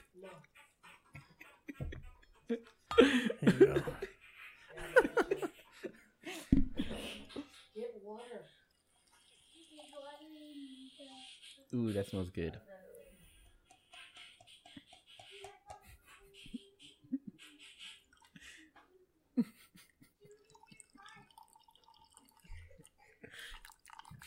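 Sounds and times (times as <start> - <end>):
speech: 0.2 - 0.6, 2.5 - 4.0, 11.7 - 12.8
laughter: 1.1 - 7.4, 19.4 - 20.7
coffee pouring into a cup: 20.2 - 24.2.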